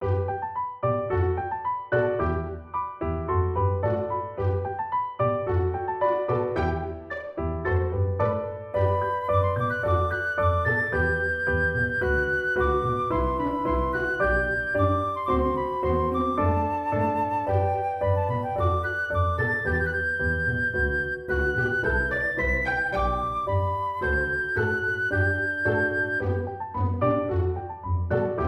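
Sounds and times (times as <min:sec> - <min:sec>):
happy tune: 0:00.0 - 0:28.4.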